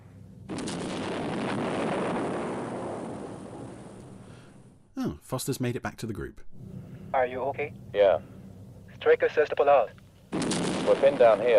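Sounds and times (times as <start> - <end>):
sustained crackling roar of explosions: 0.4 - 4.8, 10.3 - 11.5
sudden loud blast: 0.5 - 4.9, 10.3 - 11.5
speech: 5.0 - 8.4, 9.0 - 11.5.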